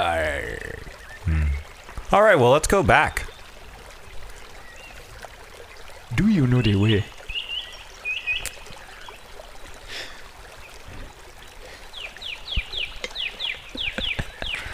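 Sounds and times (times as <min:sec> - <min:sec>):
running water: 0:00.0 - 0:14.7
birds singing in a forest: 0:00.4 - 0:01.6, 0:02.9 - 0:03.7, 0:04.4 - 0:09.8, 0:11.8 - 0:14.7
speech: 0:02.1 - 0:03.2, 0:06.3 - 0:07.2.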